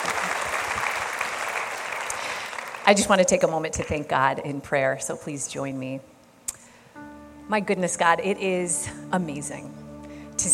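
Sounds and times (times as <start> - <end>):
audience applause at a prayer gathering: 0.0 - 2.9
speech: 2.9 - 6.1, 7.5 - 9.8, 10.4 - 10.5.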